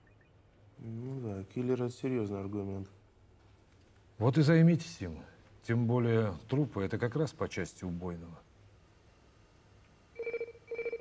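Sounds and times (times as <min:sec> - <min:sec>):
speech: 0:00.8 - 0:03.0, 0:04.2 - 0:08.4
telephone ringing in a film scene: 0:10.2 - 0:11.0.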